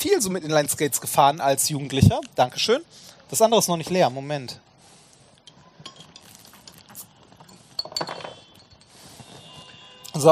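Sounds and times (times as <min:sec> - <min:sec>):
speech: 0:00.1 - 0:04.7
glasses clinking together: 0:05.4 - 0:09.1
soft clatter: 0:05.4 - 0:09.3.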